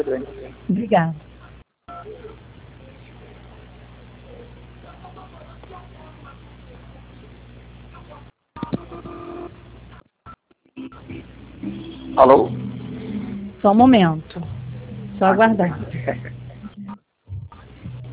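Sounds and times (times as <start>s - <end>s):
speech: 0.0s - 1.3s, 12.2s - 12.6s, 13.6s - 14.5s, 15.2s - 16.4s
narrowband telephone line tones and beeps during a call transfer: 8.7s - 9.5s.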